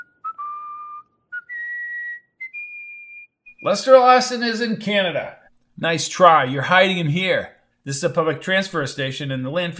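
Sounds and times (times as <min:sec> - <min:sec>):
person whistling a short melodic tune: 0:00.0 - 0:03.8
speech: 0:03.6 - 0:09.7.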